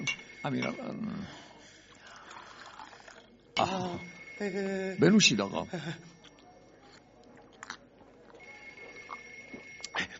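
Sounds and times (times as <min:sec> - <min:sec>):
speech: 0:00.4 - 0:01.4, 0:03.6 - 0:06.1
water pouring into a glass: 0:02.0 - 0:03.4.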